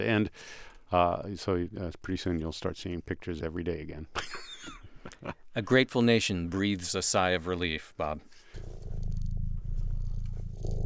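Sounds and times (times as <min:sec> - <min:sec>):
speech: 0:00.0 - 0:08.3
person imitating a cat purring: 0:08.6 - 0:10.8.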